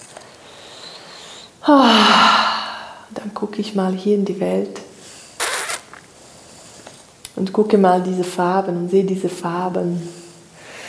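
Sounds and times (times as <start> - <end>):
deep loud inhalation: 0.5 - 3.1, 10.2 - 10.8
speech: 1.6 - 2.2, 3.4 - 4.8, 7.4 - 10.2.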